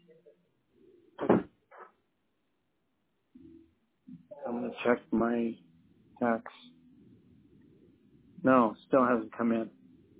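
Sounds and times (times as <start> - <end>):
door swinging shut with a solid thud: 1.2 - 1.5
faint low rumble: 3.4 - 10.1
speech: 4.7 - 6.6, 8.4 - 9.8.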